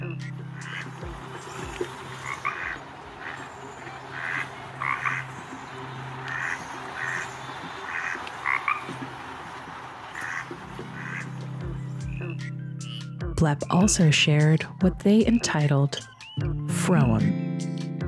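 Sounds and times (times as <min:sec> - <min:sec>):
duck-like quacking calls: 0:00.0 - 0:05.4, 0:06.2 - 0:09.0, 0:10.1 - 0:11.4
frog croaking: 0:00.0 - 0:09.2, 0:10.1 - 0:13.2
speech: 0:13.4 - 0:16.1, 0:16.8 - 0:17.4.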